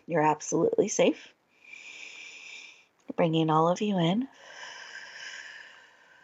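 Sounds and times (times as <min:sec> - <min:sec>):
speech: 0:00.1 - 0:01.4, 0:03.1 - 0:04.7
long airy breath during a guided breathing exercise: 0:01.5 - 0:02.9, 0:04.4 - 0:06.2.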